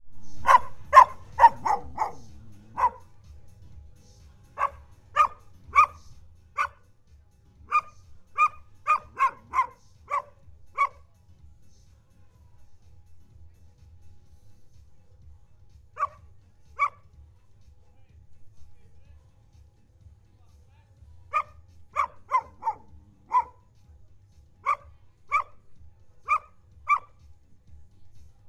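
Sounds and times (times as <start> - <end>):
distant dog in Zakynthos: 0.2 - 3.2, 4.5 - 6.8, 7.7 - 11.1, 15.9 - 17.1, 21.3 - 23.8, 24.6 - 27.3.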